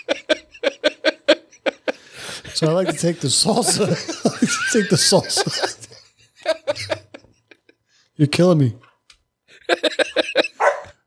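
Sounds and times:
laughter: 0.0s - 7.8s, 9.5s - 10.7s
speech: 2.6s - 5.8s, 8.2s - 8.9s
dog barking in sharp yaps: 10.6s - 11.0s.

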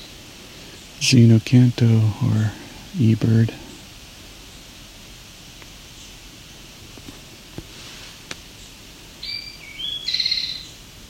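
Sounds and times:
steady background hiss: 0.0s - 11.0s
speech: 1.0s - 3.6s
Eastern Towhee song with two clear notes and a trill: 8.6s - 10.8s.

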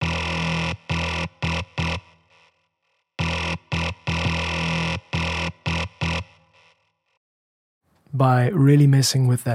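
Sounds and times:
harsh buzzing distorted synthesizer tone: 0.0s - 2.4s, 3.2s - 6.8s
speech: 8.2s - 9.5s.

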